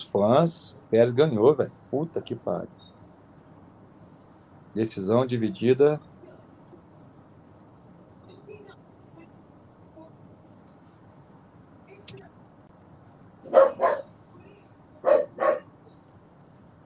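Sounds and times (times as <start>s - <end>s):
speech: 0.0s - 2.9s, 4.8s - 6.1s
faint murmur: 0.0s - 16.8s
dog barking: 13.4s - 14.2s, 15.0s - 15.8s.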